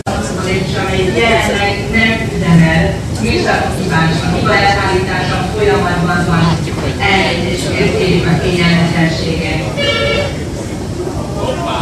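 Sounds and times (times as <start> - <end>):
escalator rumbling in a metro station: 0.0 - 11.7
many people chattering in a metro station: 0.0 - 11.7.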